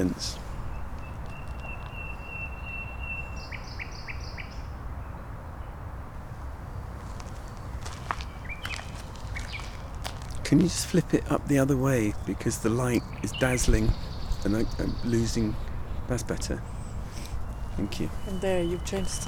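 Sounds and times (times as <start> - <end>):
speech: 0.0 - 0.4, 10.5 - 16.7, 17.8 - 19.2
light footsteps: 0.0 - 2.2, 6.9 - 11.4
nightingale singing at night: 0.0 - 5.8, 8.2 - 10.0, 11.2 - 19.2
constant outdoor hiss: 0.0 - 19.2.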